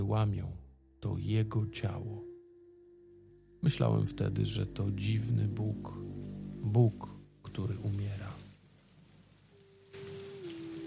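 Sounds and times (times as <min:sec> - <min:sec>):
speech: 0:00.0 - 0:02.3, 0:03.6 - 0:08.5
rain: 0:04.6 - 0:10.8.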